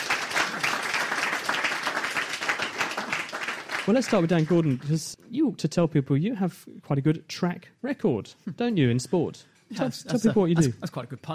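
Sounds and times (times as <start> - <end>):
crowd applauding: 0.0 - 5.1
speech: 3.9 - 11.3.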